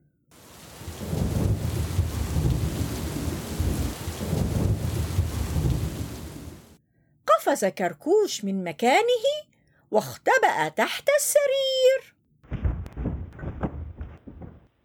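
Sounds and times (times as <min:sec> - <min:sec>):
loud rolling thunder: 0:00.4 - 0:06.8, 0:12.5 - 0:14.7
steady rain: 0:00.4 - 0:06.8
speech: 0:07.5 - 0:12.2.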